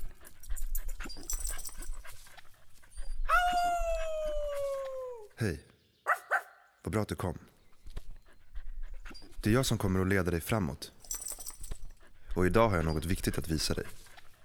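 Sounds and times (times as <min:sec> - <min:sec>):
dog whimpering and whining: 0:00.4 - 0:05.3, 0:08.0 - 0:09.4
speech: 0:05.4 - 0:05.7, 0:06.9 - 0:07.5, 0:09.4 - 0:11.0, 0:12.4 - 0:14.0.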